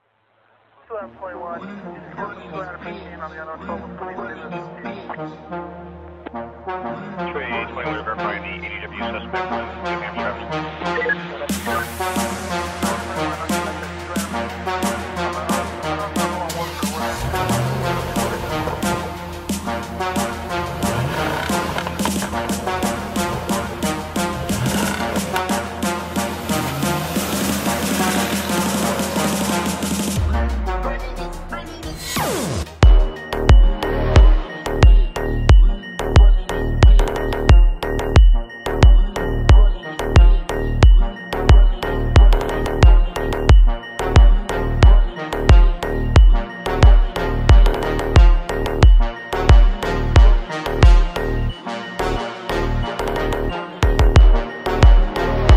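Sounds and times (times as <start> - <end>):
deep house beat car music with boosted bass: 11.0 - 51.4, 52.9 - 55.5.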